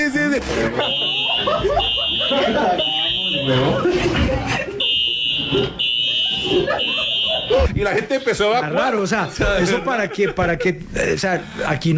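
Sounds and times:
speech: 0:00.0 - 0:04.6, 0:06.7 - 0:11.9
laughter: 0:00.0 - 0:11.9
fire alarm ringing: 0:00.5 - 0:03.9, 0:04.5 - 0:07.6.

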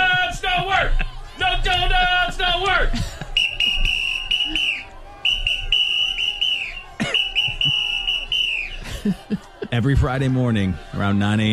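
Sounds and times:
laughter: 0:00.0 - 0:11.5
noisy protest crowd clamoring and chanting: 0:00.0 - 0:11.5
shrill whistle blowing during a protest: 0:03.3 - 0:08.8
speech: 0:09.8 - 0:11.5.

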